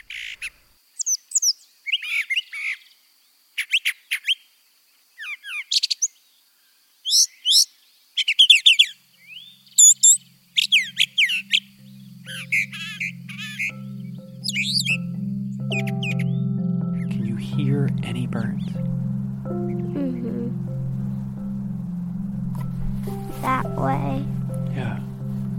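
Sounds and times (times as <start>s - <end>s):
brown thrasher singing varied sharp phrases: 0.0s - 3.0s, 3.6s - 4.5s, 5.2s - 6.4s, 7.0s - 22.0s
low steady hum: 10.3s - 25.5s.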